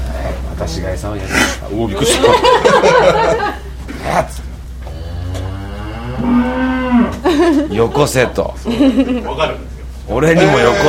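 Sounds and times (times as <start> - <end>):
speech: 0.6 - 4.5, 6.2 - 10.8
laughter: 1.9 - 3.8, 7.1 - 9.6
Holstein cow mooing: 4.9 - 7.3, 10.4 - 10.8.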